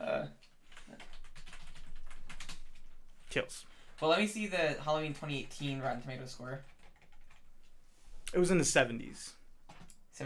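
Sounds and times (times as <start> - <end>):
typing on a computer keyboard: 0.7 - 3.0, 5.1 - 7.5
speech: 3.3 - 6.7, 8.3 - 9.4.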